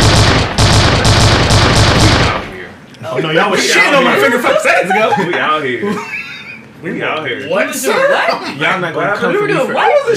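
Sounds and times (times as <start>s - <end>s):
rapid gunfire sound effects: 0.0s - 2.6s
speech: 3.2s - 6.2s, 6.8s - 10.1s
laughter: 4.0s - 6.7s.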